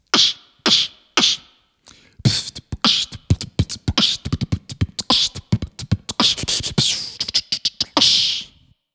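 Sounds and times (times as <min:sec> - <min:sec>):
sample beat: 0:02.3 - 0:08.5.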